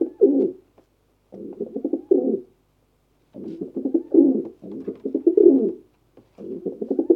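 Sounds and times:
pigeons cooing in a bird cage: 0.0s - 0.6s, 1.3s - 2.5s, 3.4s - 7.1s.

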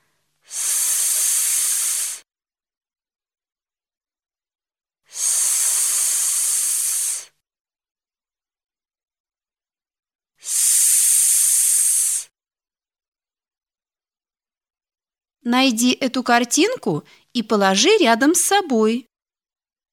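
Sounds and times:
person making hissing s sound imitating water from a tap in a speech exercise: 0.4s - 2.2s, 5.1s - 7.4s, 10.4s - 12.3s
speech: 15.4s - 19.1s.

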